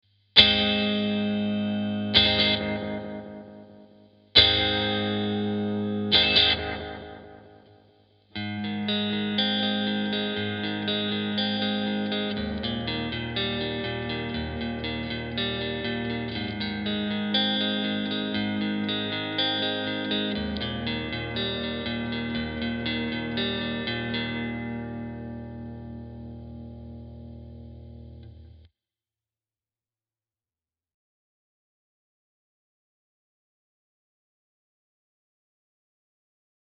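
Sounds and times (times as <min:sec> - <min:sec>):
AD-9 analog delay pedal with Keeley mod: 0:00.4 - 0:07.7, 0:08.4 - 0:28.6.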